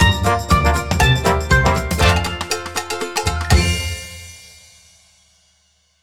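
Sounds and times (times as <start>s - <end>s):
standard slot machine free spin end sound: 0.0s - 4.1s.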